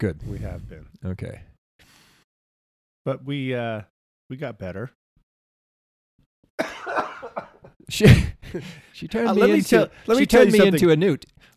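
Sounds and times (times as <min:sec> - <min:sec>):
speech: 0:00.0 - 0:01.5, 0:03.0 - 0:05.0, 0:06.6 - 0:11.5
person coughing: 0:06.6 - 0:08.4
laughter: 0:06.6 - 0:10.8.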